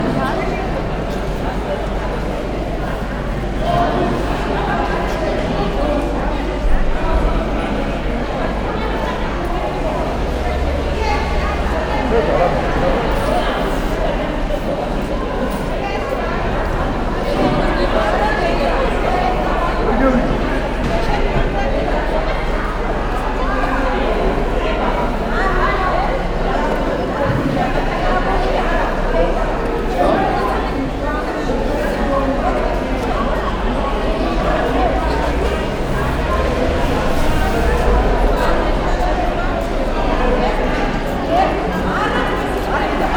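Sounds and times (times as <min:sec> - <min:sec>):
market noise: 0:00.0 - 0:43.1.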